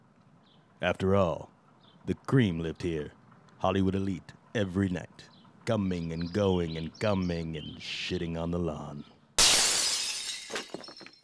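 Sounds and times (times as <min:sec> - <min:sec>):
speech: 0:00.8 - 0:09.1
scattered tinkling pieces of window glass falling: 0:09.4 - 0:11.2
window glass shattering: 0:09.4 - 0:11.2.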